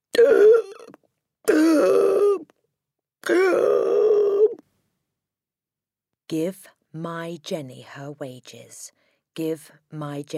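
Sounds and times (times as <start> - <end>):
person imitating strangled gasps: 0.0 - 2.5, 3.2 - 4.6
speech: 6.3 - 10.3.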